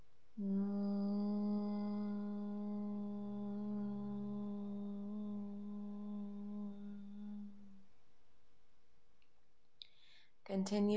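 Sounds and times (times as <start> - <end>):
speech: 0.4 - 0.7, 10.5 - 10.9
steady nasal hum on a low pitch: 0.4 - 7.8.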